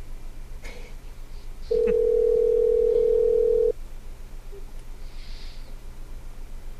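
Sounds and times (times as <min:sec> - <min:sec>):
low hum: 0:00.0 - 0:06.7
telephone dial tone: 0:01.7 - 0:03.7.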